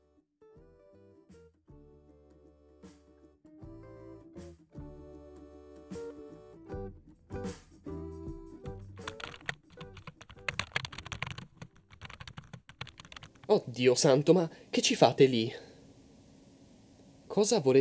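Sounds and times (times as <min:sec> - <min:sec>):
music: 0:00.0 - 0:11.6
typing on a computer keyboard: 0:09.0 - 0:13.6
speech: 0:13.5 - 0:15.6, 0:17.4 - 0:17.7.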